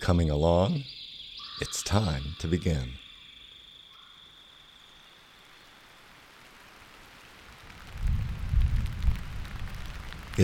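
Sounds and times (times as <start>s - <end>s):
speech: 0.0s - 1.0s, 1.6s - 3.0s
steady rainfall in the Apalachicola National Forest on a mid-May late afternoon: 4.0s - 10.4s
thunder rumbling in the Apalachicola National Forest on a mid-May late afternoon: 7.8s - 10.4s.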